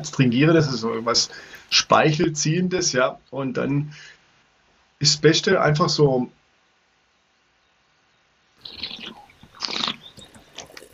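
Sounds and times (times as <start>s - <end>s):
speech: 0.0s - 4.2s, 5.0s - 6.4s
mouth smacking: 8.6s - 10.9s
wine slurping to aerate it: 8.6s - 10.9s.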